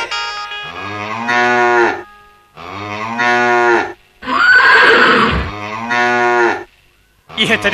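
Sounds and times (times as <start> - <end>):
water buffalo lowing in the jungle: 0.7 - 6.7.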